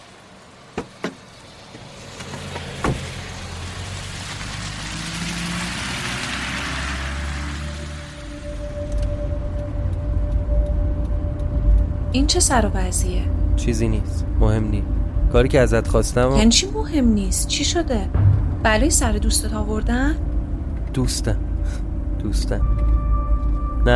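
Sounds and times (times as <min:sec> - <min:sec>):
car engine running: 0:00.0 - 0:23.9
sharp knocks: 0:00.8 - 0:01.2
speech: 0:12.2 - 0:20.3, 0:20.9 - 0:22.7.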